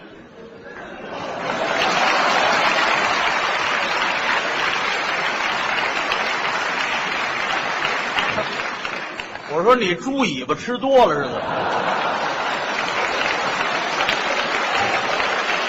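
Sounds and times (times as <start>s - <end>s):
laughter: 0.3s - 9.2s, 11.1s - 15.6s
audience applause: 1.2s - 9.6s, 11.4s - 15.6s
speech: 9.6s - 12.2s.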